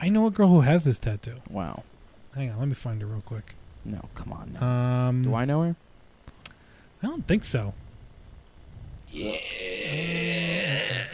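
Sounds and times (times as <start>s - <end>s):
speech: 0.0s - 5.9s, 7.0s - 7.8s, 9.1s - 11.1s
long low-pitched loud burp: 9.1s - 11.1s.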